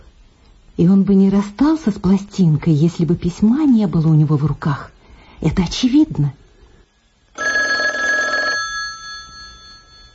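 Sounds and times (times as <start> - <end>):
speech: 0.8 - 6.4
telephone ringing: 7.3 - 10.1.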